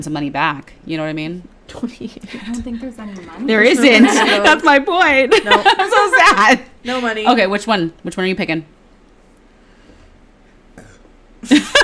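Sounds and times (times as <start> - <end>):
speech: 0.0 - 8.7, 11.4 - 11.8
laughter: 3.7 - 6.6
throaty burps: 10.7 - 11.2.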